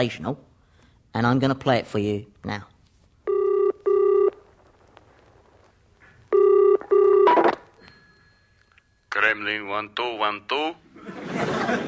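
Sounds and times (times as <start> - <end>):
speech: 0.0 - 0.5, 1.1 - 2.7, 9.2 - 11.8
telephone ringing down a phone line on a tape recording: 3.3 - 4.4, 6.3 - 8.6
laughter: 10.9 - 11.8.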